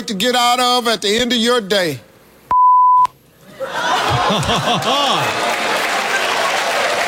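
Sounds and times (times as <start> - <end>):
speech: 0.1 - 2.1, 4.3 - 5.6
censor bleep cutting off a spoken word: 2.5 - 3.1
studio crowd laughing: 3.4 - 7.0
studio crowd applause: 4.1 - 7.0.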